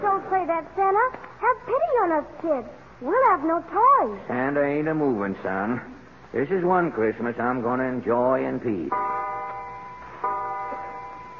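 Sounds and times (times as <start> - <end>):
speech: 0.4 - 9.2
clock striking midnight on Christmas Day: 8.9 - 11.3.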